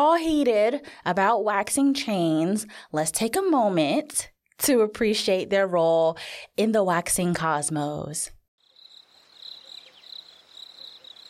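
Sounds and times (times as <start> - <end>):
speech: 0.0 - 8.4
crickets chirping in a nighttime insect chorus: 8.6 - 11.2.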